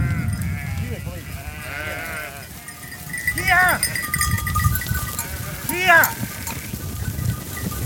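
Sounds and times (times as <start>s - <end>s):
flock of sheep bleating: 0.0s - 6.8s
clinking bell: 2.4s - 7.8s.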